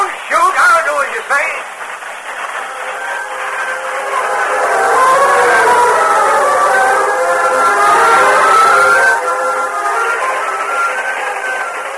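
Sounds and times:
train moving off along moonlit tracks rumbling: 0.0s - 11.9s
long wavering train whistle: 2.6s - 11.9s.

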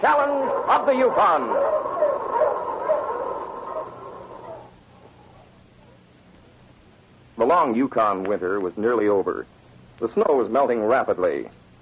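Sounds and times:
speech: 0.0s - 1.8s, 7.6s - 11.6s
dog barking: 0.0s - 4.7s
steady hiss: 0.0s - 11.8s.

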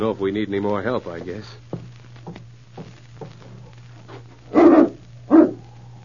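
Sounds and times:
speech: 0.0s - 1.7s
low steady hum: 0.0s - 6.0s
dog barking: 4.5s - 5.7s.

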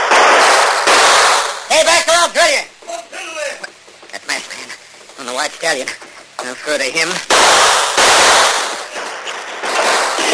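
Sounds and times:
gunshots: 0.0s - 2.6s, 7.1s - 10.3s
speech: 5.6s - 7.7s.

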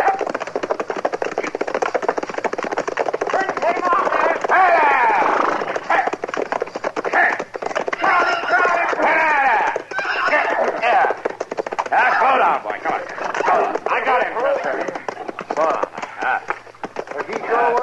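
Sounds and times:
hooves of a galloping runaway horse: 0.0s - 17.8s
people shouting: 3.4s - 6.1s, 7.1s - 11.2s, 11.9s - 12.5s, 13.3s - 14.9s.

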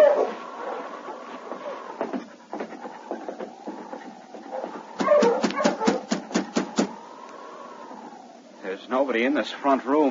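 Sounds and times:
sled dogs barking: 0.0s - 1.0s, 2.2s - 6.3s
team of sled dogs whimpering and whining: 0.0s - 6.1s
speech: 8.9s - 10.0s.

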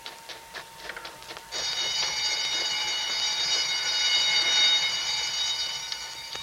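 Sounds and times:
alarm bell ringing: 1.5s - 6.4s.

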